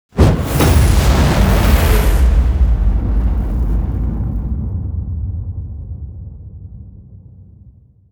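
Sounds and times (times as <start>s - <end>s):
fire spell: 0.1s - 5.5s
explosion: 0.1s - 7.4s.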